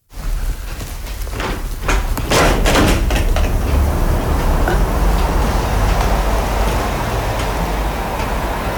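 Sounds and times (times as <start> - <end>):
passing road traffic hissing and rumbling: 0.3 - 8.7
sharp knocks and clatters: 0.7 - 8.7.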